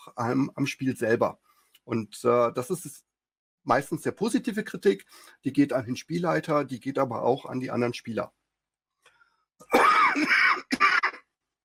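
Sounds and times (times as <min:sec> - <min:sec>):
speech: 0:00.1 - 0:08.4
person coughing: 0:09.6 - 0:11.2.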